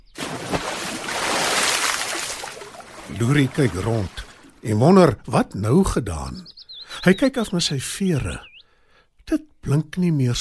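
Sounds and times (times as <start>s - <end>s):
whale plunging into a large water tank: 0.2s - 4.6s
speech: 3.1s - 8.5s, 9.3s - 10.4s.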